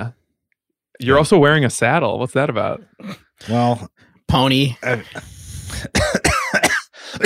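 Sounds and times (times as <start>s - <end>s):
speech: 1.0s - 6.2s
harsh raspy coughing: 2.9s - 3.6s, 4.8s - 7.2s.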